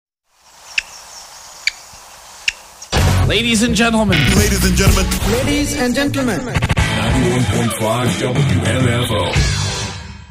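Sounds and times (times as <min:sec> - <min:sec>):
steady hissing background: 0:00.3 - 0:02.9
black-backed woodpecker kik calls: 0:00.4 - 0:03.0
speech: 0:03.3 - 0:09.6.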